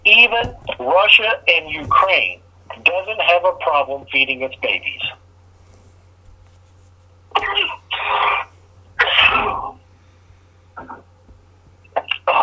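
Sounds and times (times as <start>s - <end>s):
low steady hum: 0.0s - 12.4s
speech: 0.2s - 5.2s
harsh raspy coughing fit: 7.3s - 9.8s.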